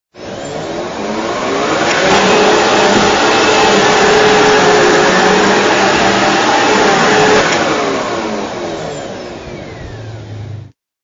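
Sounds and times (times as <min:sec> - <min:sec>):
vacuum cleaner: 0:00.1 - 0:10.8.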